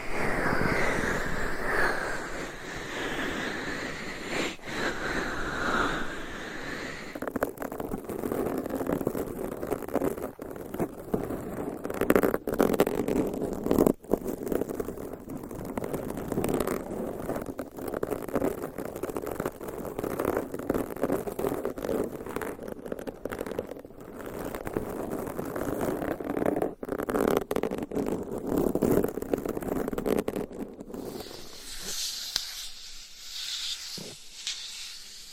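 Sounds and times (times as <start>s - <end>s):
binaural microphone scratching and rubbing: 0.0s - 35.3s.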